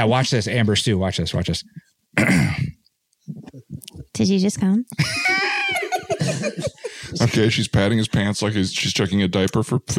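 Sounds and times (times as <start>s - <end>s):
speech: 0.0s - 2.6s, 4.2s - 5.5s, 6.4s - 9.9s
rough gravelly throat clearing: 2.2s - 2.8s
laughter: 5.0s - 7.5s.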